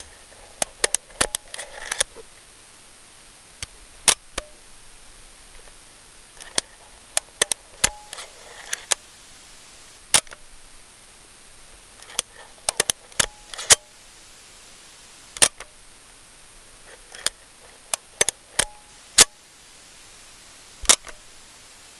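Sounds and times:
slow camera shutter: 0.0s - 2.2s, 6.4s - 9.0s, 10.1s - 10.4s, 12.0s - 14.0s, 15.3s - 15.8s, 16.9s - 19.4s, 20.8s - 21.2s
camera film rewind lever: 0.6s - 2.1s, 6.4s - 9.0s, 12.0s - 13.8s.

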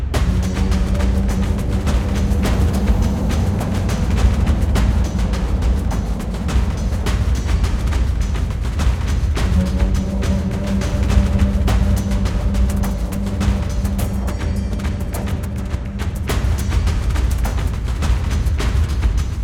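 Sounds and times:
music loop: 0.2s - 19.3s.

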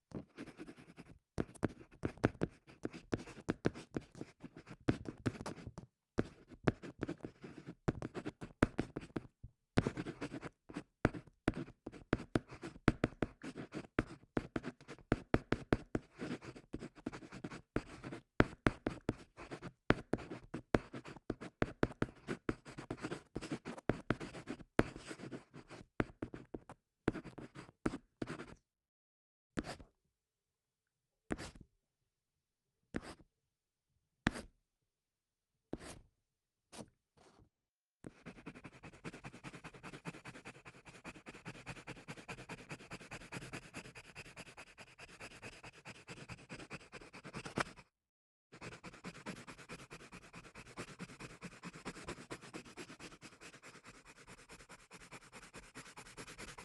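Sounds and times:
pencil: 0.1s - 28.6s, 29.6s - 29.9s, 31.3s - 31.6s, 32.9s - 33.3s, 34.3s - 34.5s, 35.7s - 36.0s, 36.7s - 37.4s, 38.0s - 47.9s, 48.6s - 56.6s.

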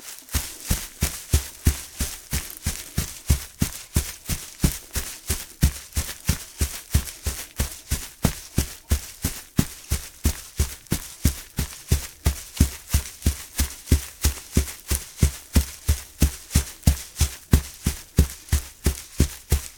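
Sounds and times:
bare feet running on grass: 0.0s - 19.7s.

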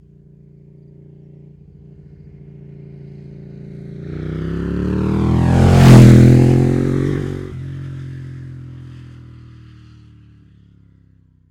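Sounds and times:
Ducati Panigale motorcycle passing: 0.0s - 11.4s.

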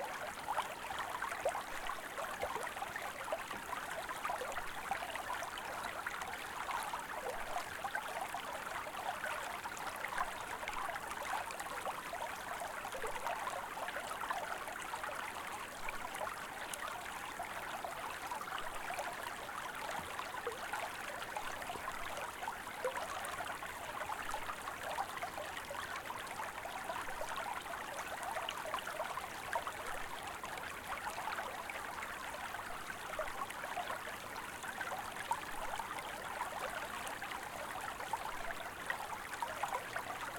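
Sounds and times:
quiet stream flowing: 0.0s - 40.3s.

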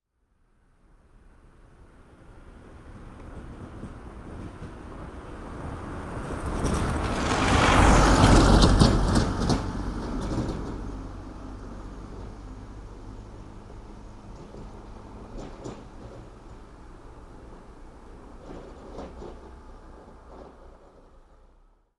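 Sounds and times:
Volkswagen Transporter passing by at medium speed on road in bad condition: 1.3s - 21.8s.

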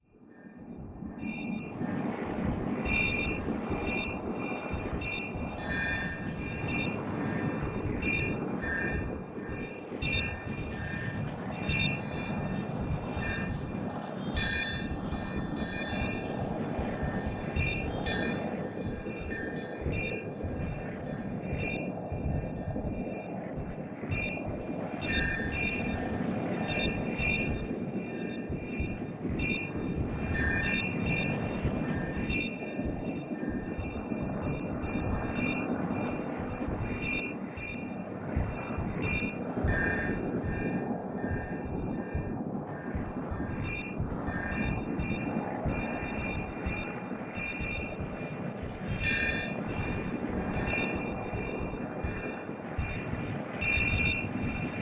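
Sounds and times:
crystal soundscape: 0.2s - 54.8s.

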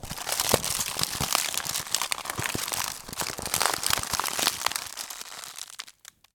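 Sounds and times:
chocolate box being crushed: 0.0s - 6.3s.

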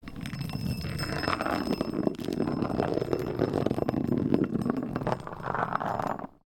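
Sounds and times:
metallic ball rolling on concrete: 0.0s - 6.4s.

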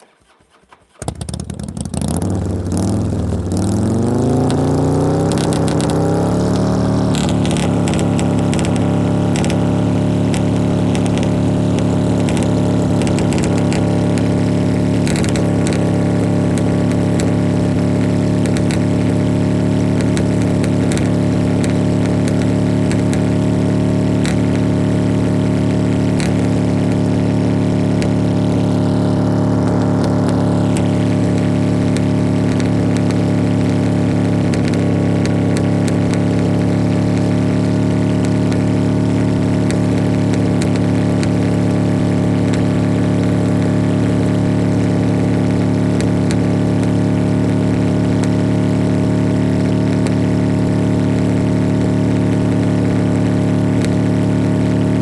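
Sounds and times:
Fatboy motorcycle with straight pipes throttling high: 0.7s - 55.0s.

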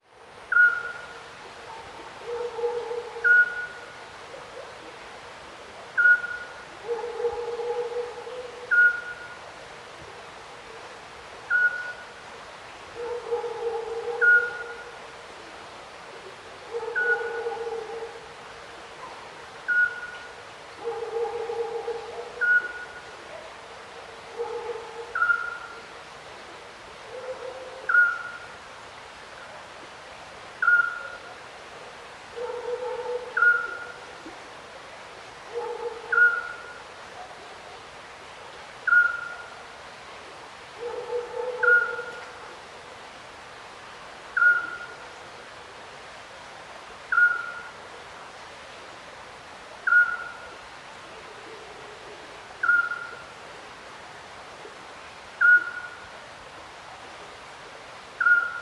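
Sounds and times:
river flowing at night: 0.0s - 58.6s
distant little owl calling at night: 0.5s - 4.8s, 6.0s - 9.4s, 11.5s - 12.1s, 13.0s - 15.0s, 16.7s - 18.2s, 19.0s - 23.1s, 24.4s - 25.9s, 27.1s - 28.5s, 30.6s - 31.3s, 32.4s - 34.0s, 35.5s - 36.8s, 38.8s - 39.6s, 40.8s - 42.4s, 44.4s - 45.1s, 47.1s - 47.8s, 49.8s - 50.6s, 52.6s - 53.3s, 55.4s - 56.0s, 58.2s - 58.6s.

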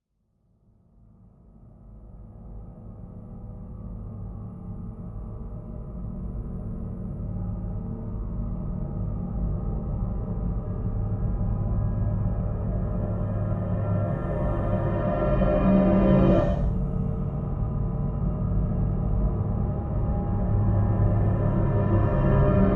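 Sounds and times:
tense upright piano drone: 8.1s - 22.7s.

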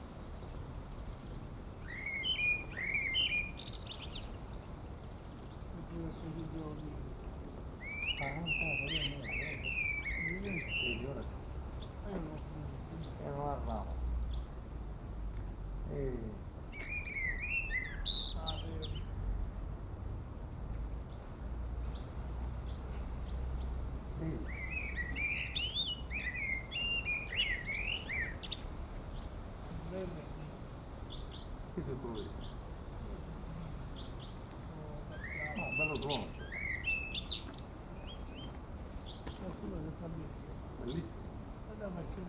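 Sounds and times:
birds on a mountain top in Erice, Sicily, Italy: 0.0s - 42.2s
wind on the top of a mountain in Erice, Sicily, Italy: 0.0s - 42.2s
people chatting briefly on a mountain top in Erice, Sicily, Italy: 5.8s - 7.2s, 8.2s - 9.6s, 10.3s - 11.3s, 12.1s - 13.9s, 15.9s - 16.4s, 18.4s - 19.0s, 24.2s - 24.5s, 29.8s - 30.5s, 31.8s - 32.3s, 34.7s - 36.4s, 39.4s - 42.2s.

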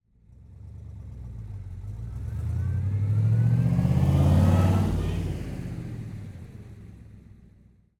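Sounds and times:
1967 big-block Corvette driving past: 1.8s - 6.4s.

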